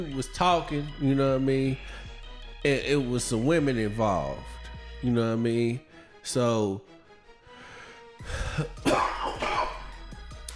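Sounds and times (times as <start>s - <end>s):
speech: 0.0s - 6.9s, 8.2s - 9.4s
person coughing with throat-clearing rasp: 8.4s - 10.0s.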